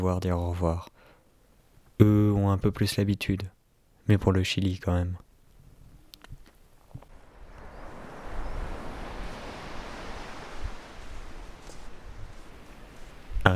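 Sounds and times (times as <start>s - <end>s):
speech: 0.0s - 0.9s, 2.0s - 5.2s
faint clicks: 5.2s - 7.7s
ocean waves breaking on a beach: 7.1s - 13.5s.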